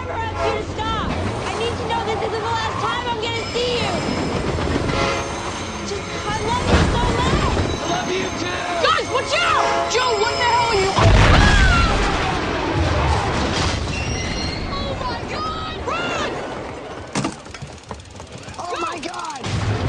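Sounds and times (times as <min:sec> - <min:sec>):
sustained rumbling of a train crash: 0:00.0 - 0:18.6
screeching metal: 0:00.5 - 0:15.1
deep explosive boom of a train crash in a movie scene: 0:11.0 - 0:14.3.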